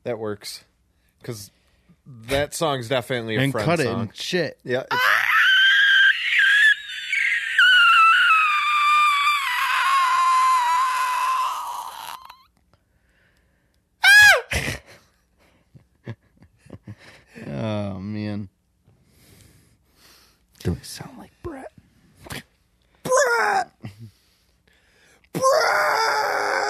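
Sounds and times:
speech: 0.0s - 5.1s
scattered sharp shrieks: 4.9s - 12.4s
long shrill bloodcurdling wail: 4.9s - 12.5s, 14.0s - 14.5s, 23.1s - 23.7s, 25.4s - 26.6s
short anguished cries: 4.9s - 12.5s, 14.0s - 14.8s, 23.0s - 23.9s, 25.3s - 26.6s
strained gasps: 19.0s - 20.5s, 24.0s - 25.3s.

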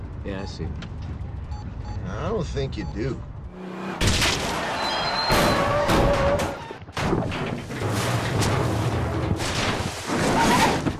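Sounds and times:
speech: 0.2s - 1.2s, 1.9s - 4.2s
crunching metal: 4.0s - 10.9s
truck crash impact after striking a deer: 4.0s - 10.9s
scraping debris: 7.2s - 10.9s.

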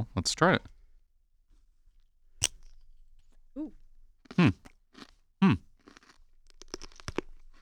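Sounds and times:
speech: 0.0s - 0.7s, 4.4s - 4.7s
bite into a crunchy pickle: 2.4s - 3.4s, 4.2s - 7.5s.

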